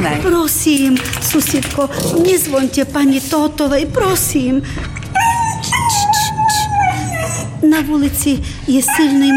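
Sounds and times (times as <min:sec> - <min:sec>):
speech: 0:00.1 - 0:06.1, 0:07.6 - 0:09.3
dog whimpering and howling on a freezing street at night: 0:05.1 - 0:07.6, 0:08.8 - 0:09.3.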